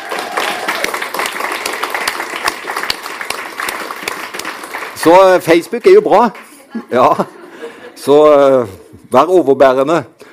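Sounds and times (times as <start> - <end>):
crowd applauding: 0.0 - 6.6
speech: 5.0 - 7.4, 8.0 - 10.1
laughter: 6.5 - 8.2.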